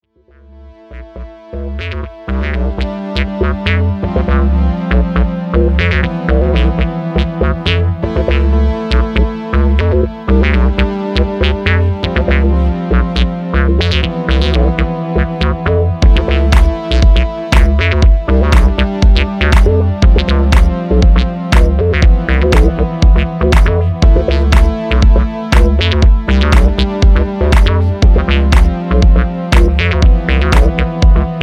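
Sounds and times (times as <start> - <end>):
mono sequencer synth bass: 0.0 - 31.4.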